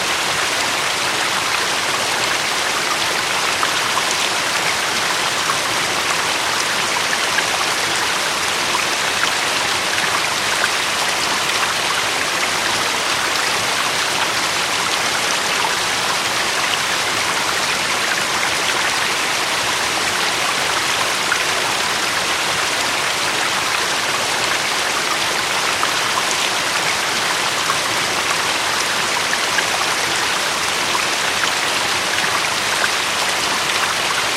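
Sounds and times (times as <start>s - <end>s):
river flowing: 0.0s - 34.3s.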